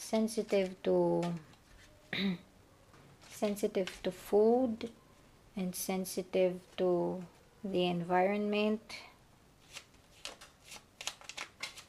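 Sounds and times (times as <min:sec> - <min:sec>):
speech: 0:00.1 - 0:01.5, 0:02.1 - 0:02.5, 0:03.4 - 0:05.0, 0:05.6 - 0:09.1
cards being shuffled: 0:00.2 - 0:02.0, 0:03.2 - 0:04.1, 0:09.6 - 0:11.8.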